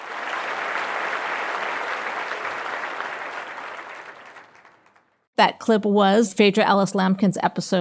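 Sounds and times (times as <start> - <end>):
audience applauding: 0.0 - 5.3
speech: 5.4 - 7.7.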